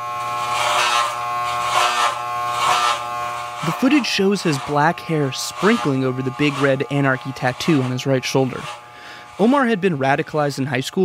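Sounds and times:
electric clippers shaving a head in a bathroom: 0:00.0 - 0:11.0
speech: 0:03.7 - 0:08.8, 0:09.4 - 0:11.0.

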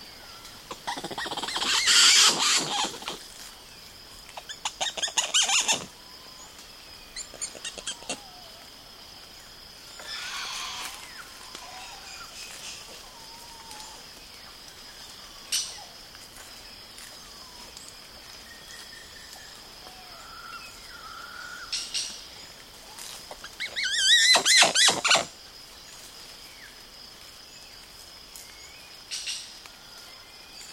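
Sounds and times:
steady hum of rainforest insects: 0:00.0 - 0:30.7
woolly spider monkeys giving high squealing calls in the Atlantic Forest of Brazil: 0:00.8 - 0:03.2, 0:04.4 - 0:05.9, 0:07.2 - 0:08.4, 0:23.4 - 0:25.3.

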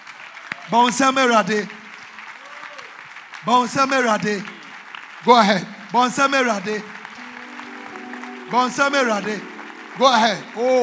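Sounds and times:
audience clapping hands: 0:00.0 - 0:10.8
speech: 0:00.7 - 0:01.8, 0:03.4 - 0:04.5, 0:05.2 - 0:07.0, 0:08.5 - 0:10.8.

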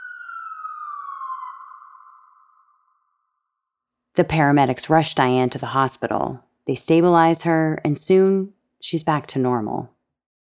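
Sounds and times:
ambulance siren wailing: 0:00.0 - 0:03.3
speech: 0:04.2 - 0:10.0.

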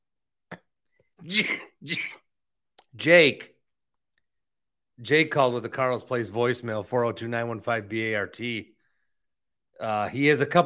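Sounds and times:
harsh raspy coughs: 0:00.5 - 0:02.4
speech: 0:01.2 - 0:02.2, 0:03.0 - 0:03.5, 0:05.0 - 0:08.7, 0:09.8 - 0:10.6.

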